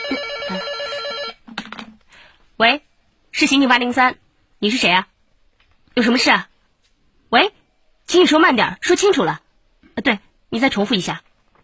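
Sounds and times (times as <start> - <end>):
telephone bell ringing: 0.0 - 1.4
speech: 0.5 - 0.8, 2.6 - 5.1, 6.0 - 6.5, 7.3 - 9.4, 10.0 - 11.3
clattering noises: 1.5 - 2.1, 11.2 - 11.6.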